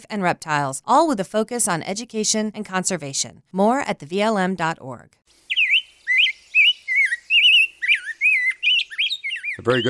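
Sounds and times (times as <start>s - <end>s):
speech: 0.0s - 5.3s, 9.6s - 9.8s
rose-breasted grosbeak singing a rich warbling song: 5.4s - 9.8s.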